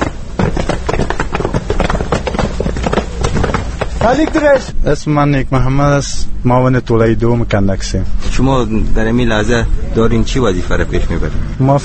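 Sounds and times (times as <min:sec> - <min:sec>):
Afghan National Army soldiers' boots marching in step during drill: 0:00.0 - 0:04.8
speech: 0:04.0 - 0:11.8.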